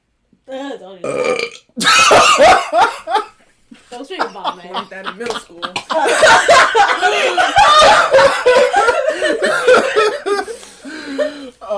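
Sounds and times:
speech: 0.5 - 3.0, 4.1 - 8.6
loud drawn-out burp: 1.0 - 2.5
laughter: 2.0 - 11.5.

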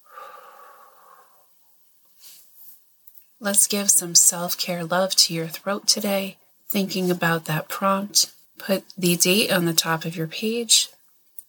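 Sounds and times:
slow breathing in and out: 0.0 - 1.6
speech: 3.4 - 11.0.

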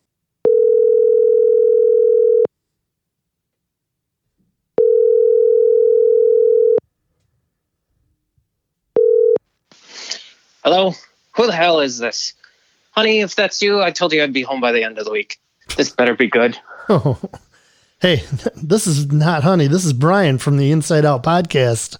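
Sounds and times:
telephone ringing tone while placing a call: 0.4 - 2.5, 4.8 - 6.8, 9.0 - 9.4
speech: 10.7 - 12.4, 13.0 - 17.4, 18.0 - 21.9
laughter: 16.7 - 19.6.

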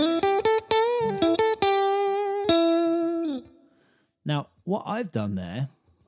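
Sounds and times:
distorted electric guitar playing a blues lick: 0.0 - 3.5
speech: 4.3 - 5.8.

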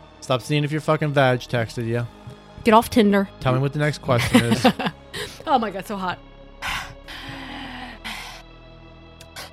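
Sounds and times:
speech: 0.2 - 4.9, 5.5 - 6.3
laughter: 4.2 - 5.4
person panting heavily: 5.1 - 5.4, 6.6 - 8.4.

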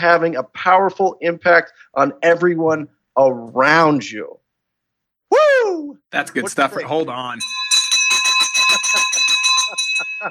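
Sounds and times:
speech: 0.0 - 4.4, 5.3 - 7.7
laughter: 6.2 - 7.3, 8.1 - 10.2
school teacher's hand bell ringing: 7.4 - 10.2.

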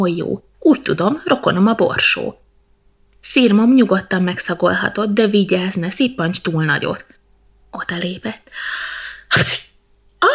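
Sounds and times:
speech: 0.0 - 2.4, 3.2 - 10.3
loud sneeze: 9.3 - 9.8.

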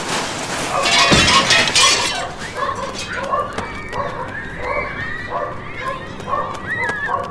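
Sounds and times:
loud broadband crash: 0.8 - 3.3
dog barking: 2.2 - 7.2.

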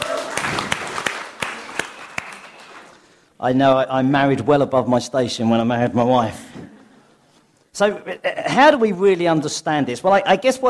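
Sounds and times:
audience applauding: 0.0 - 3.1
speech: 3.4 - 6.5, 7.8 - 10.6.

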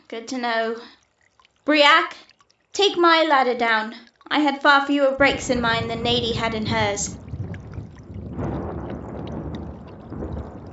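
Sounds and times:
speech: 0.1 - 1.0, 1.6 - 7.2
sloshing and splashing in shallow water: 0.9 - 2.8, 5.0 - 10.7.

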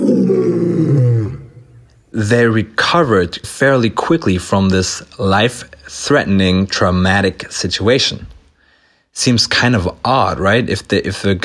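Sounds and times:
lion roaring: 0.0 - 1.9
speech: 2.2 - 8.4, 9.2 - 11.4.

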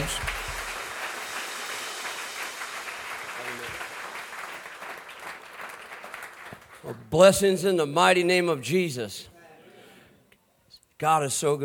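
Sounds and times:
audience applause with many hands clapping: 0.0 - 6.9
speech: 6.8 - 9.3, 11.0 - 11.6.

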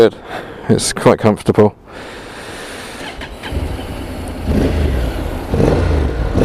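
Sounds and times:
speech: 0.0 - 2.2
750 motorcycle engine idling and revving: 2.9 - 6.4.

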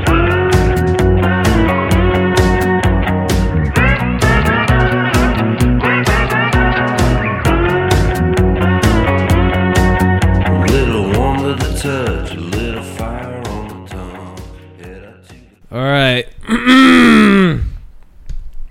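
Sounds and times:
short musical passage with a steady beat: 0.0 - 15.6
person making rough gravelly throat-clearing sounds: 16.4 - 17.8.

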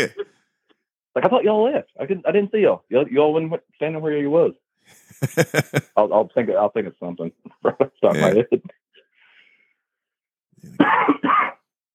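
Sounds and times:
speech: 0.0 - 0.2, 1.2 - 8.8, 10.6 - 11.6
laughter: 4.9 - 5.9, 7.5 - 8.7
person coughing brought on by allergies: 8.1 - 8.4, 10.7 - 11.7.

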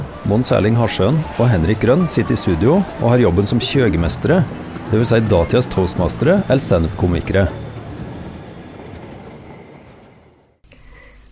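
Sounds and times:
train rumbling along the rails: 0.0 - 10.6
speech: 0.3 - 7.6.

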